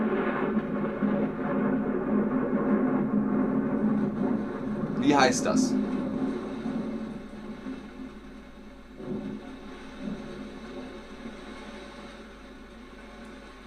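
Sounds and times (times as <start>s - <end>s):
thunder rumbling: 0.0s - 13.6s
person asking a question: 5.0s - 5.7s
speech: 5.0s - 6.0s.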